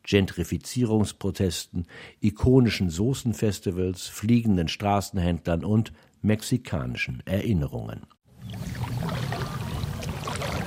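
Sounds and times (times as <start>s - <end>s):
speech: 0.1s - 9.2s
paddle dipping into smooth still water while rowing a boat in Mexico City: 8.3s - 10.6s.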